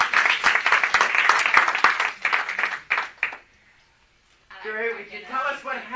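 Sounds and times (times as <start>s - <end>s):
audience applauding a young girl who was baptized: 0.0s - 3.5s.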